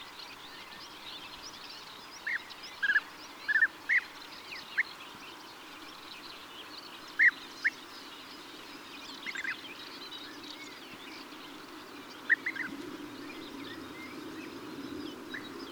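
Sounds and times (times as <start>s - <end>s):
European bee-eater calls: 2.2s - 5.0s, 7.1s - 7.8s, 11.5s - 15.7s.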